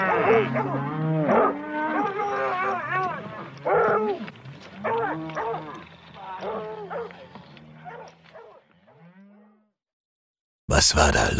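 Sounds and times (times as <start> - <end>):
dog barking: 0.0 - 3.0, 3.6 - 4.2, 4.8 - 5.8, 6.4 - 9.0
cattle mooing in agitation: 0.0 - 9.7
speech: 0.3 - 1.4, 10.8 - 11.3.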